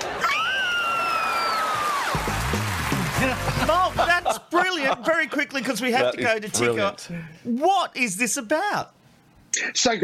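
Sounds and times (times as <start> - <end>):
group screaming excitedly: 0.0 - 2.3
speech: 2.2 - 10.0
people laughing: 2.9 - 5.5.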